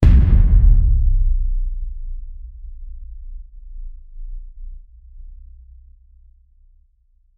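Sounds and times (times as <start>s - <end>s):
cinematic low boom impact: 0.0s - 5.3s.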